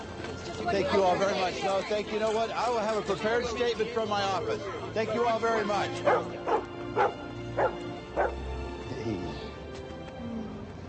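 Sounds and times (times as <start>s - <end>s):
faint murmur: 0.0s - 10.8s
speech: 0.6s - 6.5s
dog barking: 6.0s - 8.4s.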